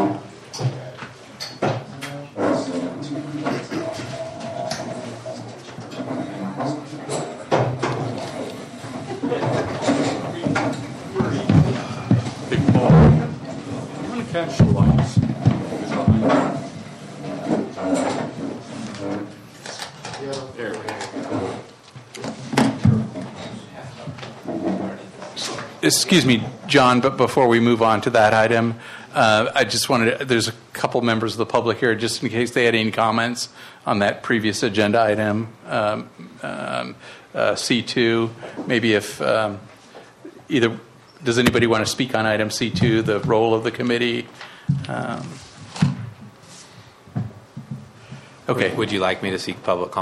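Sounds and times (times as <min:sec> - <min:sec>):
low murmur of voices at a committee meeting: 0:00.0 - 0:21.7
chairs scraping and bumping across a floor at a committee meeting: 0:01.6 - 0:26.6, 0:44.7 - 0:48.9
speech: 0:25.9 - 0:39.7, 0:40.5 - 0:45.9, 0:48.5 - 0:50.0.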